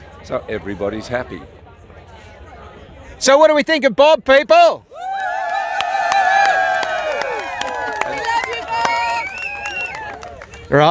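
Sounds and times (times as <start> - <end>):
speech: 0.3 - 1.6, 3.2 - 4.9
protest crowd cheering and whooping: 4.9 - 10.4.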